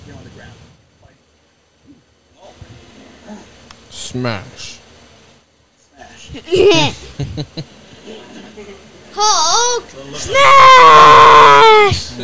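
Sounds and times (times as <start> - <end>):
speech: 4.1 - 4.8, 6.3 - 7.8, 8.6 - 12.2
laughter: 6.1 - 8.8
person yelling loudly into the microphone: 9.2 - 12.1.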